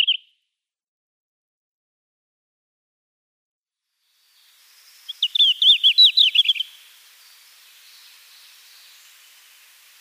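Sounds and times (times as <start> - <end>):
red-flanked bluetail singing slurred whistled notes: 0.0 - 0.4, 4.2 - 9.7.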